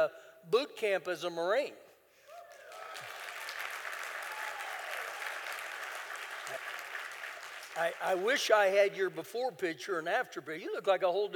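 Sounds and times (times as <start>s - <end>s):
speech: 0.0s - 1.8s, 7.8s - 11.3s
crowd applauding: 2.4s - 8.4s.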